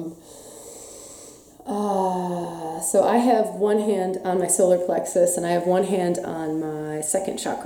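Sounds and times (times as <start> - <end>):
slow deep breathing: 0.1 - 1.6
speech: 2.9 - 7.6.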